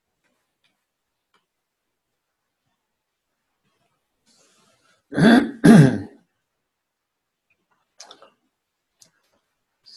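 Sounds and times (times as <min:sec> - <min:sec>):
speech: 0:05.1 - 0:05.9
throat clearing: 0:05.1 - 0:06.2.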